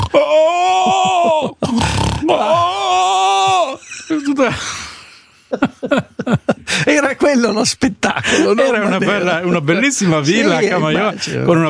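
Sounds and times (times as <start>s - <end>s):
voice imitating a woman's snoring: 0.0s - 0.2s, 1.6s - 2.4s
laughter: 0.6s - 1.6s, 3.5s - 7.2s, 8.0s - 9.8s
speech: 4.4s - 4.8s, 5.5s - 6.4s, 7.2s - 11.6s.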